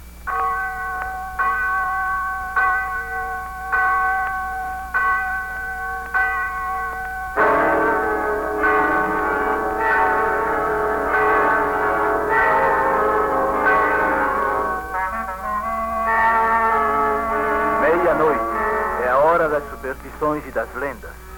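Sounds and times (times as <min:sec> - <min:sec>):
church bell striking midnight: 0:00.0 - 0:21.3
dense murmuring voices: 0:16.4 - 0:21.3.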